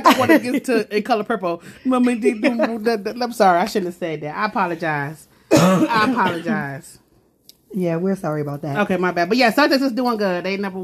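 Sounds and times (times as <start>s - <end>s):
person coughing harshly: 0.0s - 0.4s, 5.5s - 6.8s
speech: 0.1s - 7.0s, 7.7s - 10.8s
person clearing throat: 5.5s - 6.7s.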